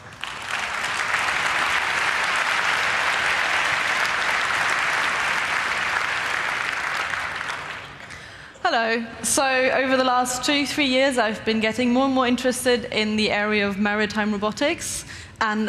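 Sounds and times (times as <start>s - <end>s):
large audience applauding: 0.0s - 8.3s
speech: 8.7s - 15.6s.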